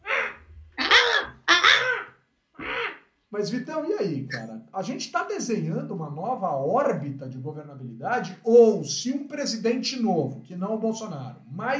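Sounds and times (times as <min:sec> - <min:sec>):
crow cawing: 0:00.0 - 0:03.1
speech: 0:03.3 - 0:11.7.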